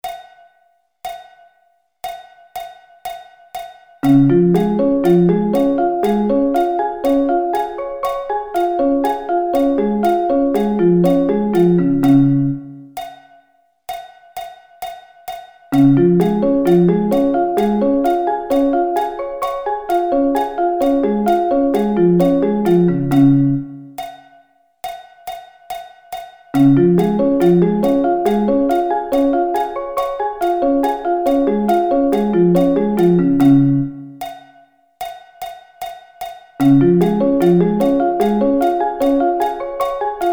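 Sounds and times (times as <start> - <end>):
D flat arpeggio inversions: 4.0 - 12.9, 15.8 - 24.0, 26.6 - 34.2, 36.6 - 40.3.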